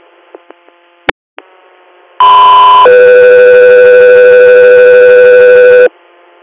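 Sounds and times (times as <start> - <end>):
radio dispatch alert tones: 2.2 - 5.9.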